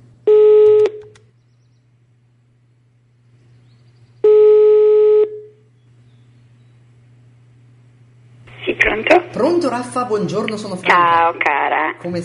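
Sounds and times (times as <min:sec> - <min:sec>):
faint low hum: 0:00.0 - 0:12.2
telephone ringback tone: 0:00.3 - 0:01.0, 0:04.3 - 0:05.5
speech: 0:08.8 - 0:12.2.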